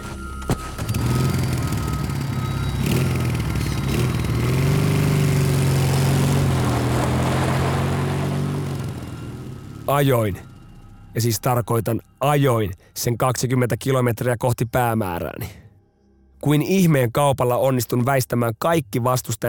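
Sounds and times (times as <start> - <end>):
motorcycle kick-start clunk: 0.0 - 4.4
small motorcycle engine running and revving: 0.8 - 10.9
speech: 9.9 - 10.5, 11.1 - 15.6, 16.4 - 19.4.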